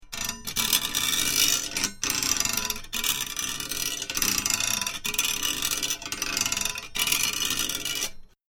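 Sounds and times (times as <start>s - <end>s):
small metal chain rubbing: 0.1s - 8.2s.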